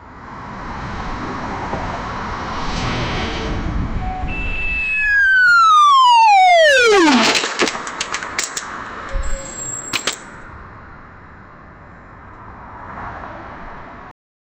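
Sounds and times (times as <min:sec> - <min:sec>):
city ambience: 0:00.0 - 0:14.1
robot falling off a bridge in a city: 0:04.8 - 0:10.2.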